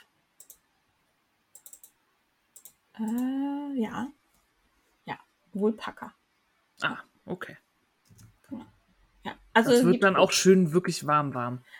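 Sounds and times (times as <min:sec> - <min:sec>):
crisp computer mouse clicks: 0:00.4 - 0:00.7, 0:01.5 - 0:03.3
speech: 0:03.0 - 0:04.2, 0:05.5 - 0:06.2, 0:06.8 - 0:07.6, 0:09.6 - 0:11.7.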